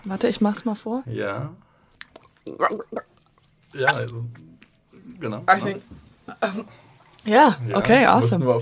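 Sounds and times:
speech: 0.0s - 1.7s, 2.4s - 3.1s, 3.7s - 4.5s, 5.1s - 8.6s
faint lip clicks: 1.9s - 3.6s
water gurgling in a mouth imitating blood in the throat: 2.0s - 3.3s.

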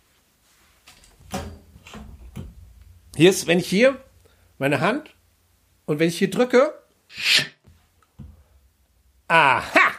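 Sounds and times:
hidden wooden door being shoved and forced open: 1.0s - 2.7s
speech: 3.2s - 5.2s, 5.9s - 7.5s, 9.3s - 9.8s.

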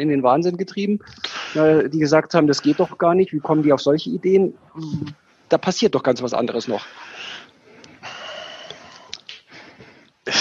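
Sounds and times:
speech: 0.0s - 7.4s
deep breath with long airy inhale and hissing exhale: 6.8s - 10.2s.

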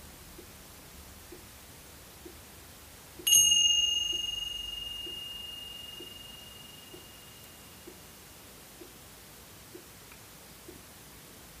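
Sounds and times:
small hand cymbal ringing: 3.2s - 8.3s.

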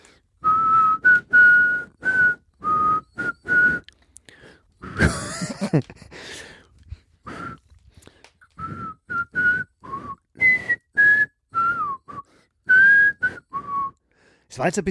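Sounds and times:
person whistling a tune: 0.4s - 3.9s, 7.3s - 7.6s, 8.6s - 14.0s
laughter: 4.8s - 6.1s
speech: 5.0s - 6.5s, 14.6s - 14.9s.

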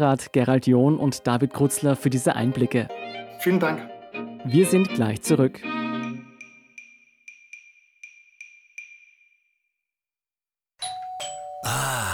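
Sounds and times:
speech: 0.0s - 5.8s
bright electronic doorbell chiming: 10.8s - 11.7s.

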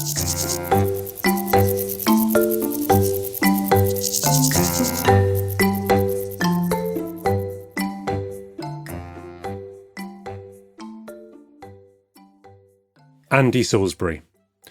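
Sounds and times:
grasshoppers and crickets chirping in a dense high trill: 0.0s - 8.5s
speech: 13.4s - 14.3s.

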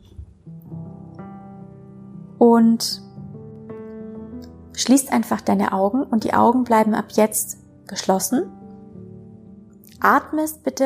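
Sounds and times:
soft slow melody of long sustained notes: 0.0s - 10.8s
speech: 2.4s - 3.1s, 4.8s - 8.6s, 10.0s - 10.8s.

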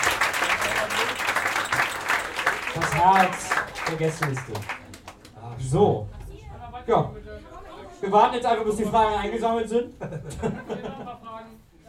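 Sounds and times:
audience applauding: 0.0s - 5.5s
speech: 3.0s - 4.8s, 5.7s - 6.2s, 6.9s - 7.2s, 8.0s - 11.6s
laughter: 9.8s - 11.4s.

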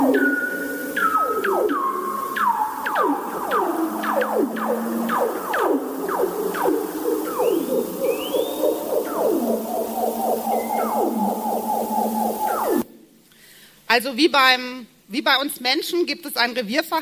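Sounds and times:
bearded seal underwater warbling trills gliding downward in pitch: 0.0s - 12.8s
speech: 14.0s - 17.0s.

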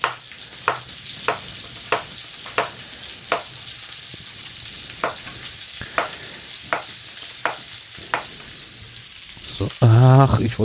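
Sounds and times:
sharp clicks as zucchini pieces land or are moved in a pan: 0.0s - 3.6s, 5.0s - 8.4s
zucchini strips sizzling in a hot frying pan: 0.0s - 10.6s
speech: 9.8s - 10.6s.

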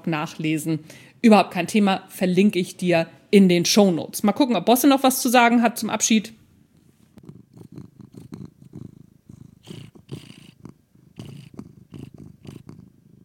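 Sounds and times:
speech: 0.0s - 6.4s
cat purring: 6.4s - 13.2s.

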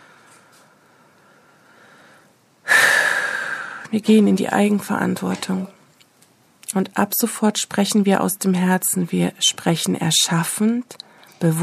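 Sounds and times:
deep audible breath: 0.0s - 3.9s
speech: 3.9s - 5.8s, 6.8s - 11.6s.

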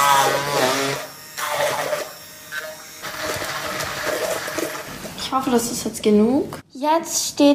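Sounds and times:
handheld immersion blender puréeing strawberries with sugar: 0.0s - 5.2s
speech: 5.3s - 7.5s.

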